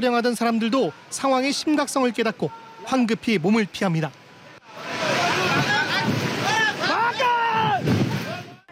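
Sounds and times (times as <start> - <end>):
speech: 0.0 - 4.2
torrent of floodwater rushing down a gorge: 0.0 - 8.7
people's raised voices: 2.5 - 3.0, 4.6 - 8.7.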